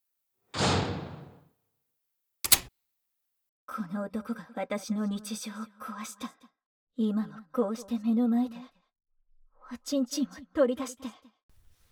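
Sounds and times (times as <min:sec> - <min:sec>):
front entrance door swishing as it is pushed shut: 0:00.6 - 0:01.4, 0:02.5 - 0:02.7
speech: 0:03.8 - 0:08.8, 0:09.7 - 0:11.4.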